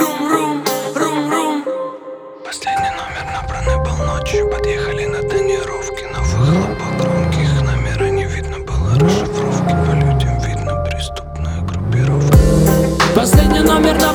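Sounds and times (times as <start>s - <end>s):
music track: 0.0s - 14.1s
car engine revving with throaty exhaust: 6.1s - 14.1s.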